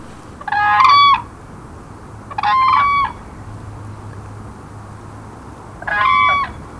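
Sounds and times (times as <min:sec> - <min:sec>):
whooping crane calling: 0:00.0 - 0:01.3, 0:02.3 - 0:03.2, 0:05.8 - 0:06.6
steady background hiss: 0:00.0 - 0:06.7.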